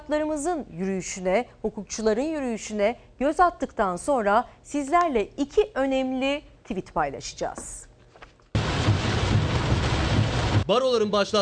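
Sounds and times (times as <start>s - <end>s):
speech: 0.1s - 7.9s, 10.7s - 11.4s
heavy rain falling on a lawyers' march in Turkey: 8.6s - 10.8s.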